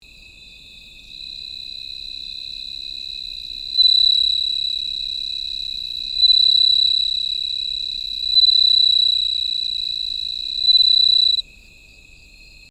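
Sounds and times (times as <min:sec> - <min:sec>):
suzumushi cicada: 0:00.0 - 0:12.7.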